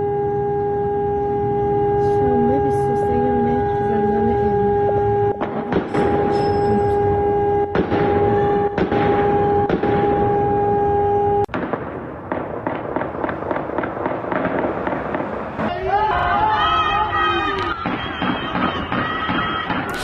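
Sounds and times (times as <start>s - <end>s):
wailing siren during prison unrest: 0.0s - 11.5s, 13.4s - 20.0s
explosions during prison unrest: 5.4s - 6.4s, 7.7s - 10.6s, 11.5s - 16.5s, 17.6s - 20.0s
gunfire during prison unrest: 5.4s - 6.5s, 7.7s - 10.3s, 11.5s - 15.7s, 17.7s - 20.0s
faint shouting: 15.6s - 20.0s.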